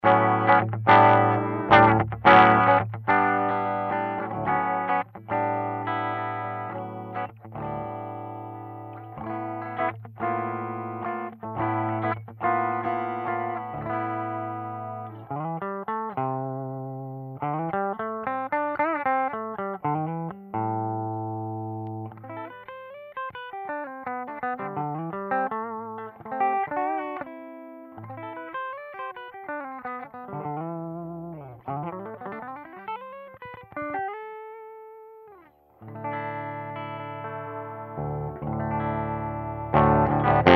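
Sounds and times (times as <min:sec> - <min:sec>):
guitar through Hiway 100 amp model on POD HD 500: 0:00.0 - 0:40.5.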